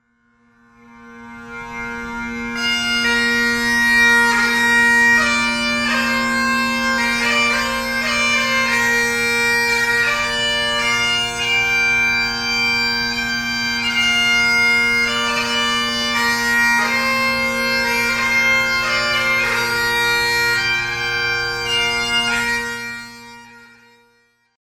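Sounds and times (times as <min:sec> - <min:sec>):
holophonic bagpipe music: 0:00.3 - 0:24.5.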